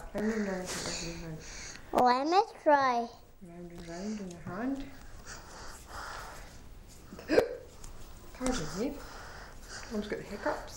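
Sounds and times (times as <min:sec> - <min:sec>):
speech: 0:00.1 - 0:06.0, 0:08.4 - 0:09.1, 0:09.9 - 0:10.7
hiccups: 0:07.2 - 0:07.7.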